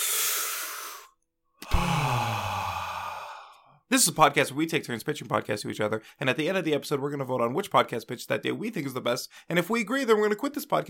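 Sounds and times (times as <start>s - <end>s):
big deep breaths taken to settle down: 0.0s - 3.8s
low voiced sigh: 0.0s - 3.8s
speech: 3.9s - 10.8s.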